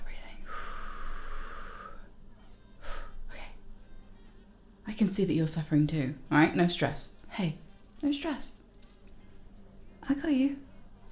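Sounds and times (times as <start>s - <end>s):
long deliberate deep breath: 0.4s - 3.4s
speech: 5.0s - 8.6s, 10.1s - 10.7s.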